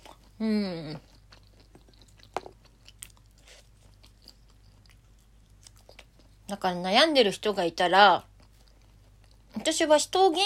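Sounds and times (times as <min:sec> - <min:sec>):
person chewing edamame: 0:00.0 - 0:06.6, 0:08.2 - 0:09.8
speech: 0:00.4 - 0:01.1, 0:06.5 - 0:08.3, 0:09.6 - 0:10.4.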